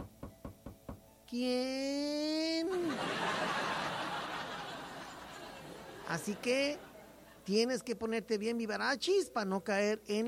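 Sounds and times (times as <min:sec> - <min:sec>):
firm knocking on a door: 0:00.0 - 0:01.1
speech: 0:01.3 - 0:03.8, 0:06.1 - 0:10.2
laughter: 0:02.6 - 0:07.5.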